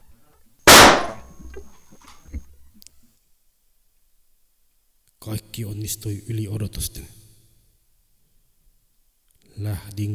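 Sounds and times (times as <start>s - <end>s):
gunshot fired at a person: 0.7s - 1.3s
speech: 5.2s - 7.2s, 9.6s - 10.1s.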